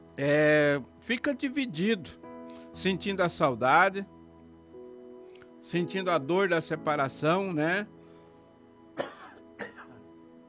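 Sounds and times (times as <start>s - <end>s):
speech: 0.2s - 2.2s, 2.8s - 4.2s, 5.6s - 8.0s
person with a bad cough coughing harshly: 9.0s - 10.0s
throat clearing rasp: 9.0s - 10.0s.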